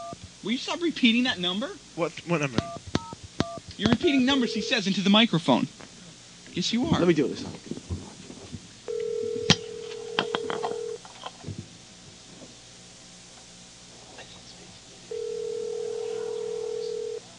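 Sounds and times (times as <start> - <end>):
speech: 0.5 - 2.9, 3.8 - 5.8, 6.5 - 7.7
telephone dial tone: 4.3 - 4.7, 8.9 - 11.0, 15.1 - 17.2.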